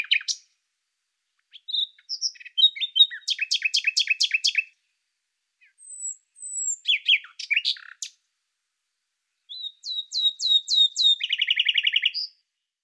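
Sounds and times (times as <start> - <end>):
common nightingale Luscinia megarhynchos singing: 0.0 - 0.6, 1.3 - 5.0, 5.6 - 8.3, 9.3 - 12.8.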